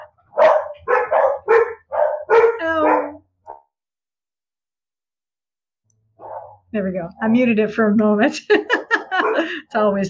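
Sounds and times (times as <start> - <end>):
dog barking: 0.2 - 3.7, 6.2 - 6.7, 8.8 - 9.5
dog whiny tonal yelp: 0.3 - 3.6, 6.2 - 6.6
speech: 6.8 - 8.8, 9.4 - 10.0
laughter: 8.3 - 9.7.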